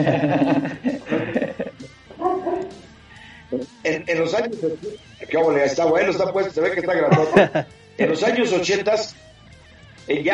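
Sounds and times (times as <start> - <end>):
speech: 0.0 - 1.4, 3.9 - 9.2, 10.1 - 10.3
laughter: 0.0 - 2.9, 6.9 - 8.6
dog barking in yipping bursts: 2.2 - 2.9.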